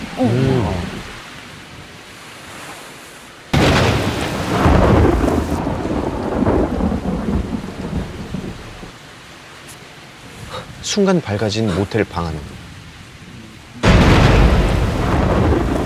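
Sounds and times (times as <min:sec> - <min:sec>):
steady rain hissing: 0:00.0 - 0:15.8
speech: 0:00.2 - 0:00.8, 0:10.9 - 0:12.6
thunderclap during a rainstorm: 0:03.6 - 0:08.9, 0:13.8 - 0:15.8.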